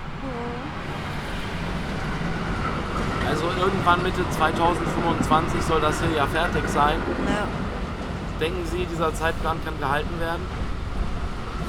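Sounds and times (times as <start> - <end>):
train arriving at a station: 0.0 - 11.6
speech: 3.5 - 7.7, 8.4 - 10.6.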